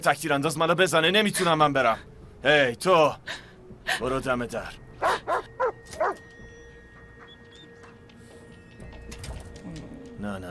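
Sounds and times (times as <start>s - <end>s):
speech: 0.0s - 6.1s, 10.2s - 10.4s
guard dog barking loudly: 5.0s - 6.2s.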